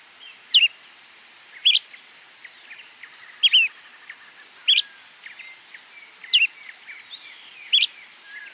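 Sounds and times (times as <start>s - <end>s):
Bran-colored flycatcher Myiophobus fasciatus flammiceps calling: 0.0s - 0.8s, 1.5s - 8.5s.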